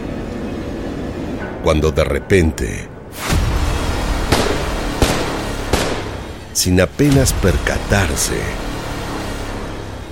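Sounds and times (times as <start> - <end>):
constant rumbling noisy background: 0.0 - 10.1
speech: 1.6 - 2.9, 6.6 - 8.7
gunshots on the steps of a building in Milan: 3.2 - 7.4.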